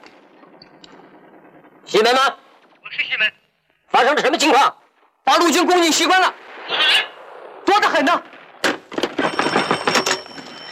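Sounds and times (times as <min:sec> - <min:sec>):
speech: 0:01.9 - 0:03.4, 0:04.0 - 0:07.1, 0:07.8 - 0:08.3
telephone bell ringing: 0:09.2 - 0:10.7.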